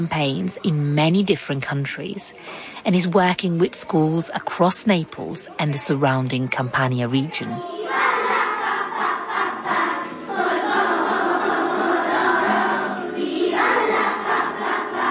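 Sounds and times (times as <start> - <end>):
speech: 0.0 - 8.0
crowd singing a song: 7.4 - 15.0.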